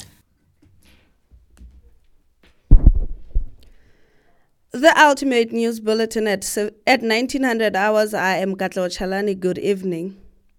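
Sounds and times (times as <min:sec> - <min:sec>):
deep booming heartbeat thumps in a radio station jingle: 0:02.7 - 0:03.8
speech: 0:04.8 - 0:10.2.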